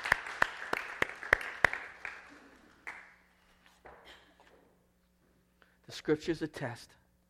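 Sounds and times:
person clapping hands: 0:00.0 - 0:03.4
speech: 0:05.9 - 0:07.0.

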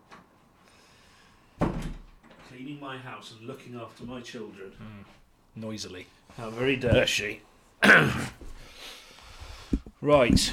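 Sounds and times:
door shutting with a sharp loud thud: 0:01.6 - 0:02.6
speech: 0:02.6 - 0:08.4, 0:10.0 - 0:10.5.

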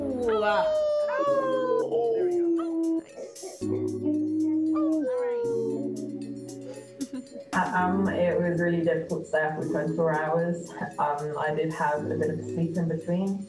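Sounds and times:
team at a 24-hour animation contest howling like wolves: 0:00.0 - 0:05.9
speech: 0:07.7 - 0:13.4.

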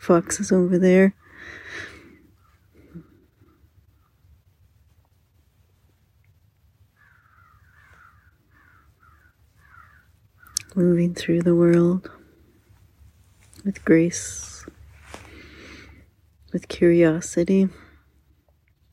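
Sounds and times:
speech: 0:00.0 - 0:01.9, 0:10.8 - 0:12.2, 0:13.6 - 0:14.5, 0:16.5 - 0:17.8
low steady outdoor rumble: 0:00.0 - 0:18.9
crows cawing: 0:07.0 - 0:10.6.

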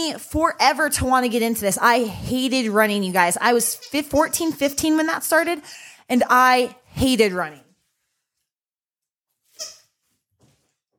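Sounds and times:
speech: 0:00.1 - 0:07.6
dog's squeeze toy squeaking: 0:09.5 - 0:10.0.

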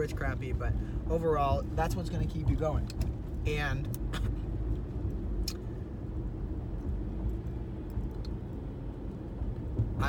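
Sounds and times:
speech: 0:00.0 - 0:04.3
road rumble from a car being driven: 0:00.0 - 0:10.0.

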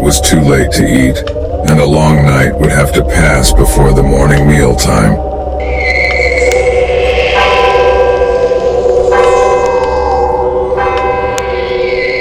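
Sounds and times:
speech: 0:00.1 - 0:06.0
church bell ringing: 0:07.3 - 0:12.1.

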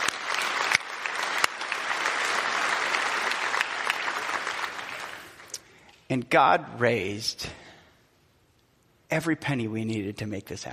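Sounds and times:
large crowd applauding: 0:00.0 - 0:05.6
speech: 0:06.1 - 0:07.6, 0:09.1 - 0:10.7.

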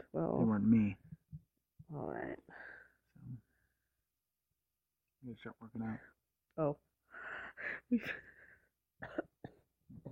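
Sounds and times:
speech: 0:00.2 - 0:01.1, 0:01.9 - 0:02.7, 0:05.2 - 0:08.3
wet phlegmy coughing: 0:09.0 - 0:10.1.

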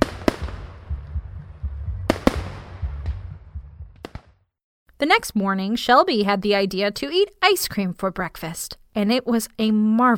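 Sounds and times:
fireworks exploding over a lake: 0:00.0 - 0:01.3, 0:01.9 - 0:04.4
low steady rumble: 0:00.0 - 0:04.1
speech: 0:05.0 - 0:10.1.

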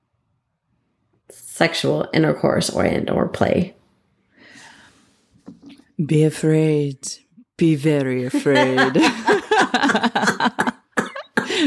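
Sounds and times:
speech: 0:01.3 - 0:03.8, 0:06.0 - 0:10.3
laughter: 0:08.2 - 0:11.6
person coughing: 0:10.3 - 0:11.6
person gasping between coughs: 0:11.4 - 0:11.6.

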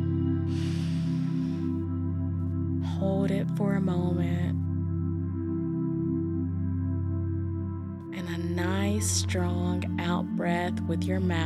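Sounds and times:
steady sustained musical drone: 0:00.0 - 0:11.4
deep breath in during a guided relaxation exercise: 0:00.5 - 0:01.8
speech: 0:03.0 - 0:04.7, 0:09.0 - 0:11.4.

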